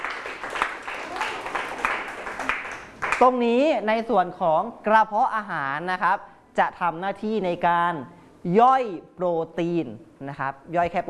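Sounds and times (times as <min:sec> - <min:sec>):
classroom of students clapping for a classmate: 0:00.0 - 0:03.3
speech: 0:03.2 - 0:11.0.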